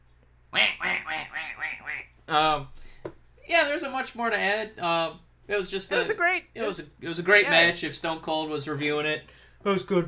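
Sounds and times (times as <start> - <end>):
speech: 0.5 - 0.7, 2.3 - 2.8, 3.6 - 10.0
duck quacking: 0.5 - 2.1.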